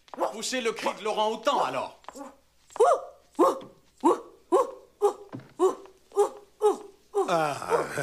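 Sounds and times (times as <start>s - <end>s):
speech: 0.4s - 4.2s, 7.3s - 8.0s
person imitating a big dog barking: 2.2s - 8.0s.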